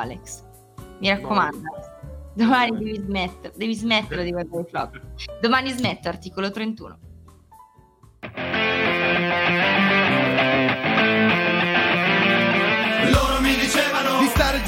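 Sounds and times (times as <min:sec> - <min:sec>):
speech: 0:00.0 - 0:07.1
Italian hip-hop song intro instrumental music: 0:01.0 - 0:06.1, 0:09.2 - 0:14.6.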